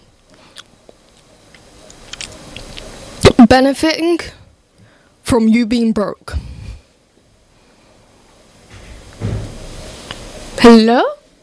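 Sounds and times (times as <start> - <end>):
speech: 3.5 - 4.4, 5.3 - 6.4, 10.6 - 11.2
door shutting with a muffled thud: 8.7 - 9.9.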